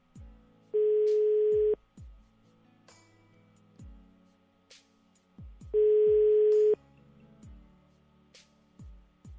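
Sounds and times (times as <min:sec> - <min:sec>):
ringback tone on an unanswered phone call: 0:00.8 - 0:01.8, 0:05.8 - 0:06.8.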